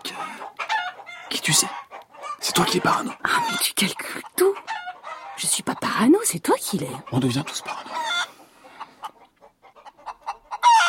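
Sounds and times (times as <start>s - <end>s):
caged laying hens clucking: 0.0s - 10.8s
caged laying hen squawking: 0.1s - 8.4s
speech: 1.3s - 1.8s, 2.4s - 4.8s, 5.4s - 8.0s.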